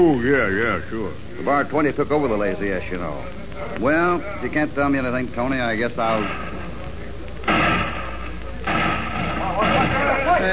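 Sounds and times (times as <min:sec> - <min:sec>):
speech: 0:00.0 - 0:06.6
gunshots in a town: 0:07.4 - 0:10.5.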